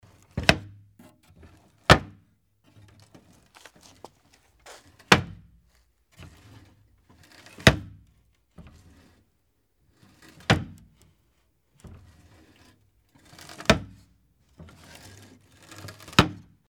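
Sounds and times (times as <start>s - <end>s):
wooden lid opening and closing: 0.3s - 2.2s, 2.9s - 5.5s, 10.4s - 11.0s, 13.4s - 14.0s, 15.7s - 16.5s.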